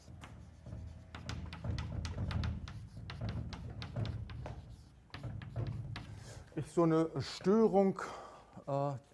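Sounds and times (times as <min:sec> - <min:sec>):
writing on a board during a maths lecture: 0:00.0 - 0:06.6
speech: 0:06.6 - 0:09.1.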